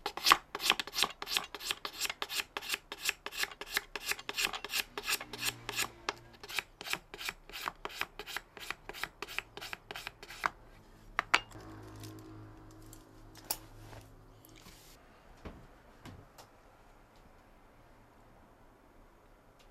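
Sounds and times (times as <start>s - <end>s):
craftsman shaving the thread-winding section of a traditional Edo bamboo fishing rod: 0.0s - 10.5s.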